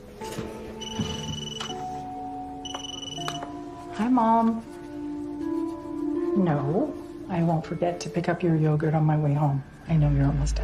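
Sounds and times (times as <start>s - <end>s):
electronic phone ringtone for incoming call: 0.8s - 3.6s
speech: 4.0s - 4.7s, 6.4s - 10.6s.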